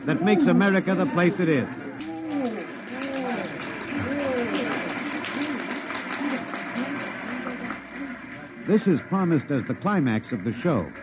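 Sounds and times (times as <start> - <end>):
speech: 0.0 - 2.2, 8.7 - 11.0
laughter of a parade crowd: 2.0 - 10.2
large outdoor parade crowd cheering: 2.0 - 11.0
overlapping voices of a parade crowd chattering: 2.0 - 11.0
scattered clapping of a parade crowd: 2.0 - 11.0.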